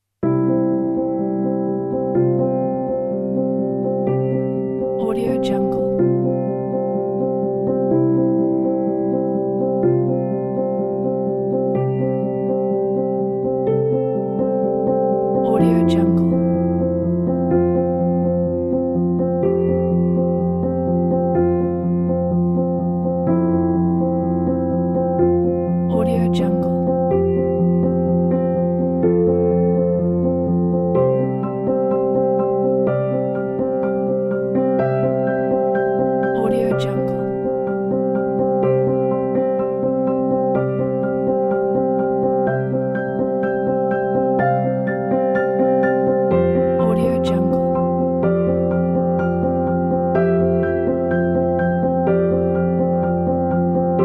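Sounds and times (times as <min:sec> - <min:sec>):
inspiring solo piano music: 0:00.2 - 0:54.0.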